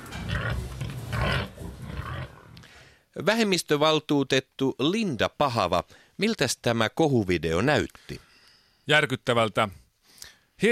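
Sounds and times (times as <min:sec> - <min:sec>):
pigs grunting and snorting while eating feed: 0:00.0 - 0:02.6
speech: 0:03.2 - 0:09.8.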